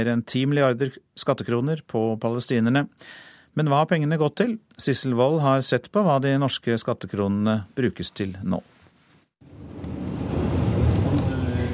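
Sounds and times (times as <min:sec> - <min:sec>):
speech: 0:00.0 - 0:08.8
bulletproof car engine and road noise on narrow rural roads in the West Bank: 0:09.4 - 0:11.7.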